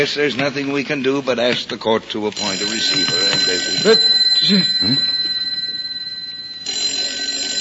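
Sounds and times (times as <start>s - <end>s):
speech: 0.0s - 5.2s
desk telephone ringing with a shrill metallic bell: 2.4s - 7.5s.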